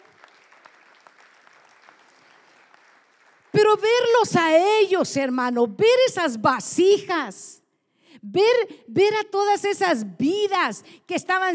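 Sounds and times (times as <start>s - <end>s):
audience clapping: 0.0s - 3.7s
speech: 3.7s - 7.6s, 8.3s - 11.5s.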